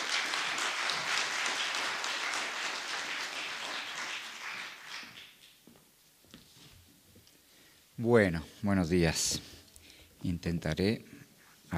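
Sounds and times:
audience applause for a doctor at a psychology lecture series: 0.0s - 5.6s
speech: 8.0s - 9.5s, 10.2s - 11.7s.

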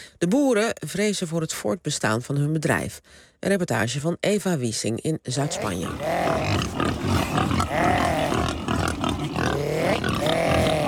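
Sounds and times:
speech: 0.2s - 8.1s
Iberian black pigs squealing and grunting on a farm in southern Spain: 5.4s - 10.8s.

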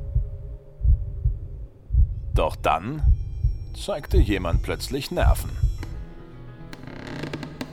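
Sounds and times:
deep heartbeat thudding: 0.0s - 6.1s
faint steady hum: 0.0s - 6.3s
speech: 2.4s - 3.2s, 3.8s - 5.7s.

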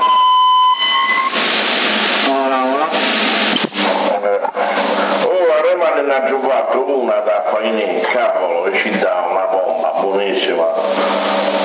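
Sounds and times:
electronic beep on a CB radio tuned to 27 MHz in Sassari: 0.0s - 1.4s
CB radio static hiss: 1.2s - 11.6s.

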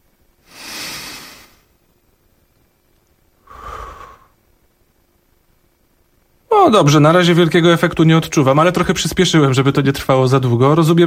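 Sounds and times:
slow breathy exhales during a relaxation breathing exercise: 0.4s - 1.6s, 3.4s - 4.4s
speech: 6.6s - 11.0s.

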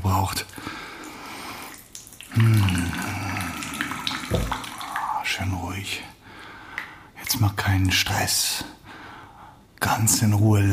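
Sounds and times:
warm water splashing and sloshing in a bathtub as someone bathes: 0.0s - 8.4s
speech: 7.4s - 8.8s, 10.0s - 10.7s.

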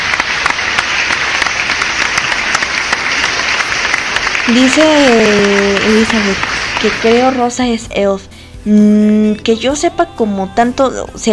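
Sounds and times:
crowd applause: 0.0s - 7.9s
speech: 4.5s - 11.3s.

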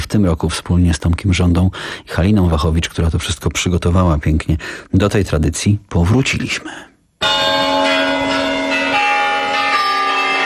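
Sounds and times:
speech: 0.1s - 6.9s
Kremlin clock chimes striking in Red Square: 7.2s - 10.4s.

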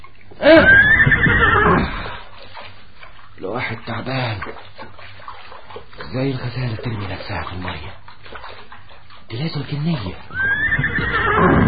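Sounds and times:
horse neighing: 0.4s - 2.1s, 10.3s - 11.6s
speech: 3.7s - 4.9s, 5.8s - 8.5s, 9.3s - 11.6s.

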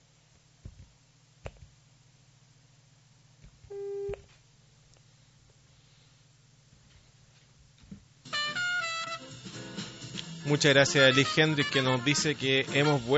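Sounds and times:
telephone busy signal while placing a phone call: 3.7s - 4.2s
speech: 10.5s - 13.1s.

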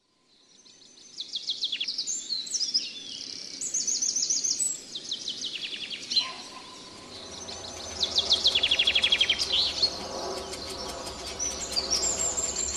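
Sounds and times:
bird song for training pet birds: 0.4s - 12.7s.

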